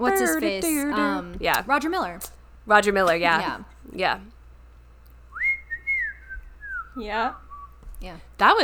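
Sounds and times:
speech: 0:00.1 - 0:04.3, 0:07.0 - 0:07.4, 0:08.0 - 0:08.6
person whistling a tune: 0:05.4 - 0:07.8.

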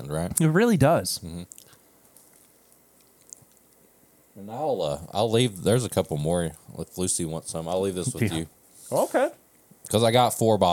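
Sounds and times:
speech: 0:00.0 - 0:01.7, 0:04.4 - 0:10.7
chewing cake with crunchy sugar bits: 0:01.4 - 0:04.0.

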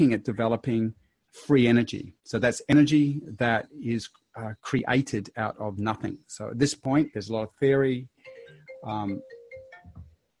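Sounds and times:
speech: 0:00.0 - 0:08.1, 0:08.8 - 0:09.4
mobile phone ringtone electronic melody: 0:08.3 - 0:10.0.

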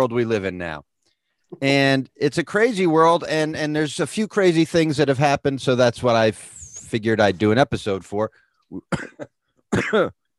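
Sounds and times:
speech: 0:00.0 - 0:00.9, 0:01.5 - 0:10.2
person coughing: 0:08.7 - 0:10.3.

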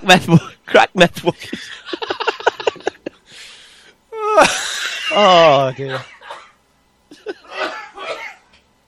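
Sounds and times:
speech: 0:00.0 - 0:02.3, 0:04.4 - 0:06.2
laughter: 0:01.3 - 0:03.2, 0:07.1 - 0:08.2
person coughing: 0:05.8 - 0:06.6, 0:07.4 - 0:08.4.

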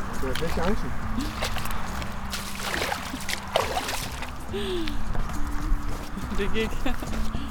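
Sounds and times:
speech: 0:00.2 - 0:01.6, 0:04.5 - 0:05.1, 0:06.4 - 0:07.4
rubber boots sloshing through slush and a puddle in Ilrup Ådal: 0:00.4 - 0:04.5.

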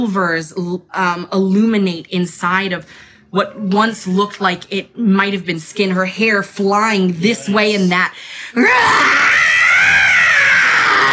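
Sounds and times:
speech: 0:00.0 - 0:09.5
woman's sustained wailing ghostly scream: 0:08.6 - 0:11.1.

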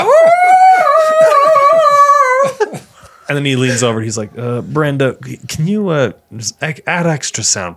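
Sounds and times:
wolf howling in one long drawn-out note: 0:00.0 - 0:02.8
speech: 0:03.3 - 0:07.7.

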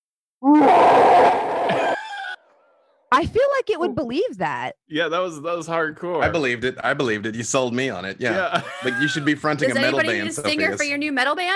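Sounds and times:
person imitating a monster's roar: 0:00.4 - 0:02.4
laughter: 0:01.6 - 0:02.4, 0:08.1 - 0:10.8
speech: 0:03.2 - 0:11.5.

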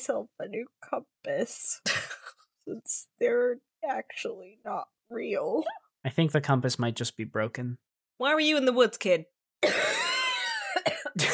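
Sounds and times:
speech: 0:00.0 - 0:09.9, 0:11.0 - 0:11.3
person coughing: 0:01.8 - 0:02.4, 0:09.6 - 0:11.3.

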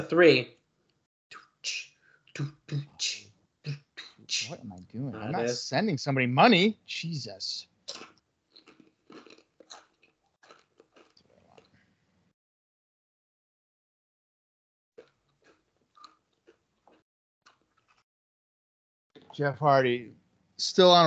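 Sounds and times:
speech: 0:00.0 - 0:00.6, 0:01.3 - 0:08.1, 0:19.4 - 0:21.0
person munching popcorn chips: 0:07.9 - 0:11.7.

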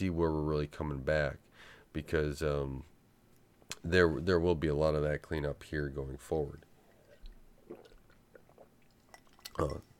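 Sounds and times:
speech: 0:00.0 - 0:02.9, 0:03.8 - 0:06.7, 0:09.6 - 0:09.9
person sipping water: 0:06.8 - 0:09.9
person swallowing water: 0:07.0 - 0:09.9.

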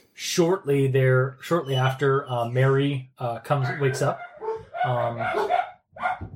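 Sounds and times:
speech: 0:00.2 - 0:05.6
person imitating several dogs barking and yowling: 0:03.6 - 0:06.3.

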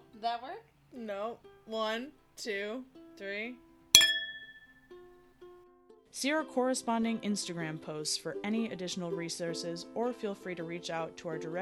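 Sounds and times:
speech: 0:00.2 - 0:03.7, 0:06.1 - 0:11.6
glasses clinking together in a toast: 0:04.0 - 0:04.8.

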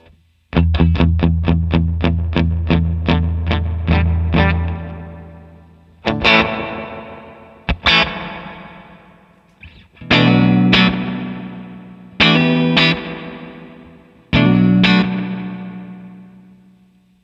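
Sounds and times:
electric guitar through a VVco Ghostly Reverb pedal: 0:00.0 - 0:17.2.

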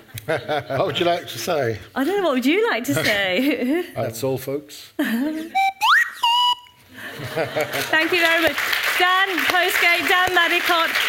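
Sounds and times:
laughter: 0:00.1 - 0:01.4, 0:06.9 - 0:08.2
speech: 0:00.3 - 0:05.7, 0:07.4 - 0:11.0
slide whistle played in short speech-like phrases: 0:05.5 - 0:06.8.

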